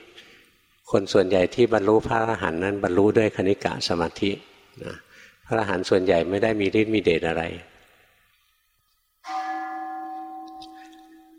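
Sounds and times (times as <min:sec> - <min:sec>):
speech: 0:00.9 - 0:07.7
single bell struck and ringing: 0:09.2 - 0:11.3.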